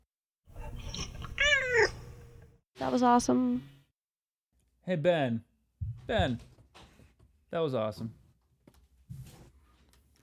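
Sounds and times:
cat meowing: 0:00.5 - 0:02.4
speech: 0:02.8 - 0:03.7, 0:04.8 - 0:05.5, 0:06.1 - 0:06.5, 0:07.5 - 0:08.2.

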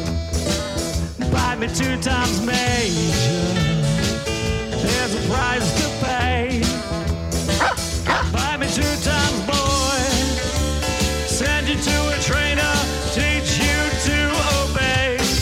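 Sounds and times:
dense continuous musical backing: 0:00.0 - 0:15.4
speech: 0:01.6 - 0:03.7
dog barking and yipping: 0:07.5 - 0:08.4.

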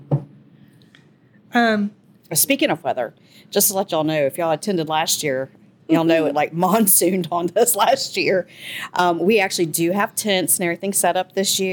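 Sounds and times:
quiet hum: 0:00.0 - 0:11.7
dull knock on wood: 0:00.1 - 0:00.3
speech: 0:01.5 - 0:11.7.

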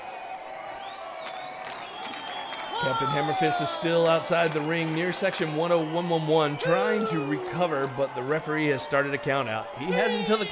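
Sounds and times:
large arena crowd roaring and cheering: 0:00.0 - 0:10.5
shrill whistles: 0:00.6 - 0:07.5
whoops: 0:00.7 - 0:04.2, 0:06.6 - 0:08.0
speech: 0:02.8 - 0:10.5.

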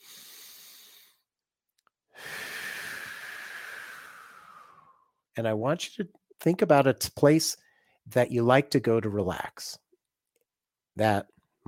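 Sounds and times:
hissing exhale during a relaxation exercise: 0:00.0 - 0:01.2, 0:02.2 - 0:05.0
person inhaling deeply during a relaxation exercise: 0:00.0 - 0:01.2, 0:02.1 - 0:05.1
speech: 0:05.4 - 0:09.8, 0:11.0 - 0:11.6.

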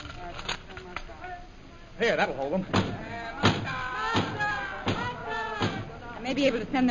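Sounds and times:
faint murmur of voices: 0:00.0 - 0:06.8
speech: 0:02.0 - 0:03.1, 0:06.3 - 0:06.8
heavy blows pounding on a door: 0:02.7 - 0:05.9.

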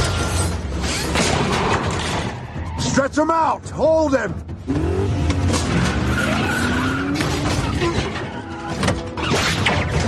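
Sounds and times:
tires squealing and skidding from several cars: 0:00.2 - 0:03.1, 0:04.7 - 0:09.9
speech: 0:03.0 - 0:05.2
car engine rumble roaring: 0:04.4 - 0:09.2.

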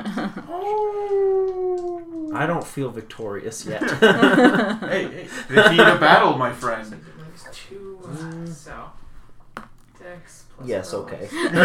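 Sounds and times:
laughter: 0:00.0 - 0:02.2, 0:03.6 - 0:06.6, 0:11.2 - 0:11.6
speech: 0:00.5 - 0:01.1, 0:02.4 - 0:09.0, 0:10.1 - 0:11.6
person howling like a wolf: 0:00.5 - 0:02.4.

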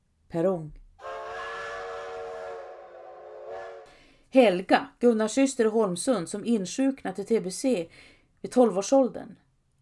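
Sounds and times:
speech: 0:00.3 - 0:00.8, 0:04.3 - 0:09.4
steam train whistle: 0:01.0 - 0:04.0.

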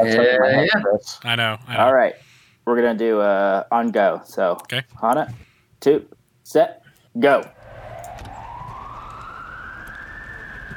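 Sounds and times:
speech: 0:00.0 - 0:07.6
police siren wailing in neighborhood: 0:07.6 - 0:10.7.

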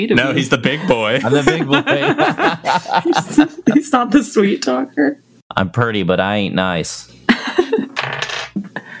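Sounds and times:
speech: 0:00.0 - 0:07.7
laughter: 0:00.4 - 0:04.1
dice rolling on a hard tabletop: 0:08.0 - 0:08.6.

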